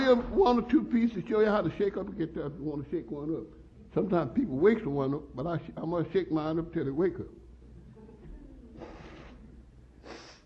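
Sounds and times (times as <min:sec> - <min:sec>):
low steady hum: 0:00.0 - 0:10.4
speech: 0:00.1 - 0:07.4
short breathy nose blow: 0:10.0 - 0:10.4.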